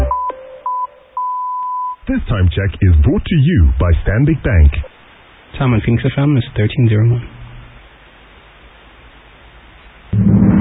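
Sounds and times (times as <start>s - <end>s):
telephone keypad tones dialing a bank service code: 0.1s - 2.0s
speech: 2.1s - 4.9s, 5.5s - 7.3s
musical sting: 10.1s - 10.5s.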